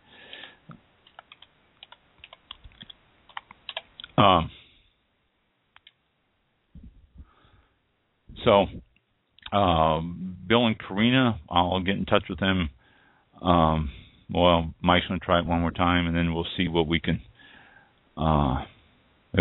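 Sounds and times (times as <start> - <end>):
typing on a computer keyboard: 1.0 - 3.9
speech: 4.2 - 4.6, 8.5 - 8.8, 9.5 - 12.8, 13.4 - 17.3, 18.2 - 18.7.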